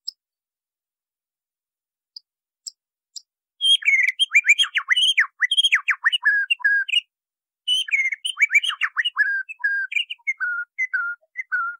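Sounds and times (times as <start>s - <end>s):
White-rumped Shama singing training song: 3.6s - 7.1s, 7.7s - 11.7s.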